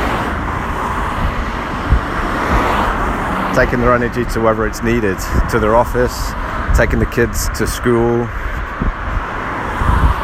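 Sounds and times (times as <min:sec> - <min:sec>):
constant stream of cars driving past on a road: 0:00.0 - 0:10.2
speech: 0:03.6 - 0:09.0.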